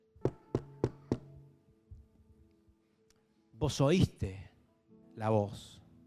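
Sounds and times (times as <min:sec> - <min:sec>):
firm knocking on a door: 0:00.2 - 0:01.3
speech: 0:03.6 - 0:04.5, 0:05.2 - 0:05.8.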